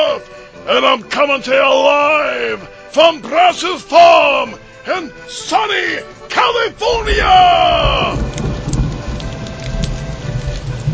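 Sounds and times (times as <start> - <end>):
speech: 0.2 - 8.4
steady rain falling: 6.0 - 10.9
low rumbling undertone: 6.9 - 10.9.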